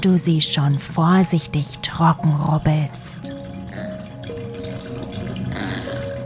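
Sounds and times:
speech: 0.0 - 3.9
bathtub water draining with a gurgling rush after a bath: 0.0 - 6.2.

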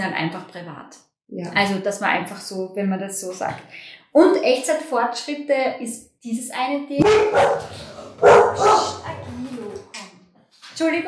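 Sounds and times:
speech: 0.0 - 9.6, 10.8 - 11.0
dog barking: 7.0 - 9.0.

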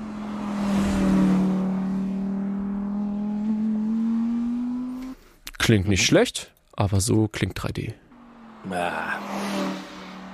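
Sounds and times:
Audi R8 race car passing at about 200 km/h on a racetrack: 0.0 - 5.1, 8.1 - 10.3
speech: 5.7 - 8.0, 8.6 - 9.6.

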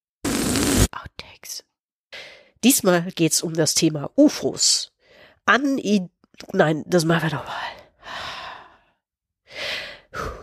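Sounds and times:
speech: 1.0 - 8.3
audible breathing close to the mic: 2.1 - 2.6, 5.0 - 5.4, 7.7 - 10.4.

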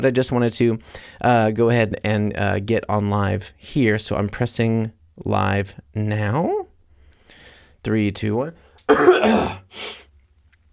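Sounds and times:
speech: 0.0 - 6.6, 7.8 - 10.0
harsh breathy cough into a microphone: 8.9 - 9.7
person clearing throat: 8.9 - 9.7.

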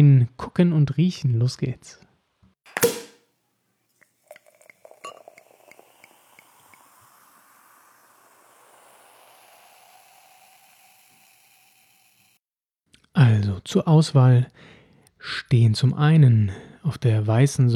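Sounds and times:
speech: 0.0 - 2.1, 13.2 - 17.7
brut sparkling wine bottle cork pop: 2.7 - 3.2, 4.0 - 12.3
sparkling wine fizzing hiss: 3.9 - 12.4
sparkling wine pouring into a glass: 4.0 - 12.4.

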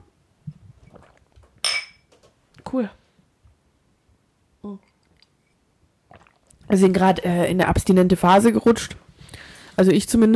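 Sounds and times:
glasses clinking in a toast: 1.6 - 2.1
speech: 2.7 - 3.0, 4.6 - 4.9, 6.7 - 9.0, 9.8 - 10.3.

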